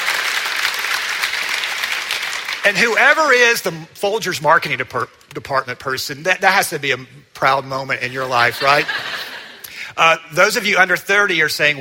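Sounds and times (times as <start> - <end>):
audience applause: 0.0 - 3.0
speech: 2.6 - 9.1, 9.9 - 11.7
laughter: 8.1 - 9.8.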